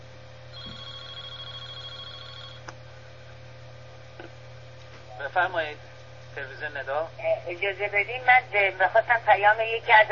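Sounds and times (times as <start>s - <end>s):
quiet room hum: 0.0s - 10.1s
telephone ringing with a warbling electronic trill: 0.5s - 2.7s
speech: 5.2s - 10.1s.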